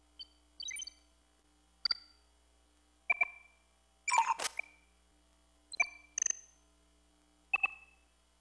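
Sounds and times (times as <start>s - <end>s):
command hum: 0.0s - 8.4s.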